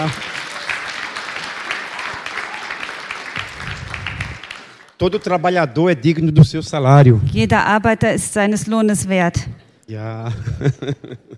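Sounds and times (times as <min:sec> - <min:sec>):
speech: 0:00.0 - 0:00.3, 0:05.0 - 0:11.3
audience clapping: 0:00.0 - 0:05.6
laughter: 0:09.9 - 0:11.3.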